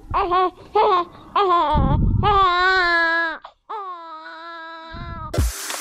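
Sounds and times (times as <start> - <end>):
baby crying: 0.1 - 5.4.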